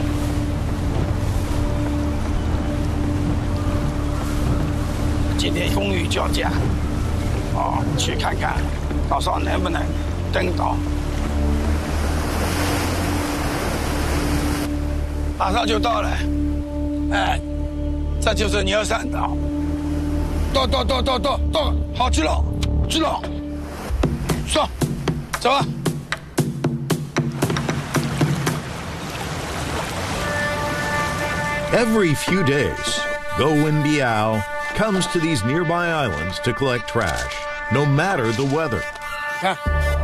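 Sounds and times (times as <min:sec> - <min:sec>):
rain at sea off Zhejiang Province China: 0:00.0 - 0:14.8, 0:27.4 - 0:31.7
rough sea water churning and splashing around the hull: 0:00.0 - 0:15.4, 0:23.5 - 0:39.4
fishing boat engine droning off Zhejiang Province China: 0:00.0 - 0:22.0, 0:27.4 - 0:40.0
speech: 0:05.4 - 0:06.8, 0:07.6 - 0:11.0, 0:15.4 - 0:16.4, 0:17.1 - 0:17.5, 0:18.2 - 0:19.5, 0:20.5 - 0:23.4, 0:24.5 - 0:24.8, 0:25.4 - 0:25.8, 0:31.7 - 0:39.9.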